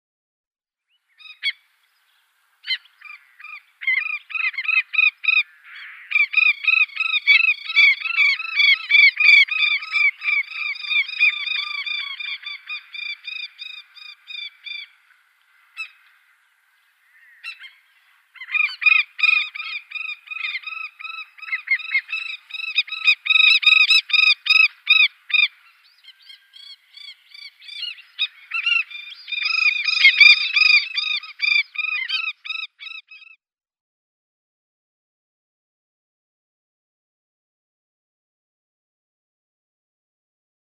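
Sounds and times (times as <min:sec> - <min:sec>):
African skimmer calling: 0:00.9 - 0:33.4.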